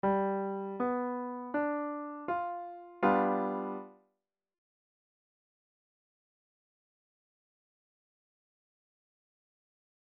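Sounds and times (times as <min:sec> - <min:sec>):
ii V I chord progression with V7 chord: 0:00.0 - 0:03.9.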